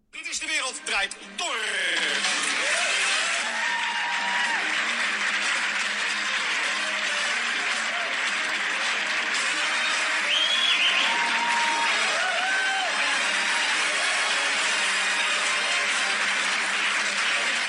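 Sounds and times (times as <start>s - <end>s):
speech: 0.7s - 1.8s
studio crowd noise played from a phone: 1.5s - 17.6s
studio-audience applause from TV talk show played from a phone: 2.2s - 17.6s.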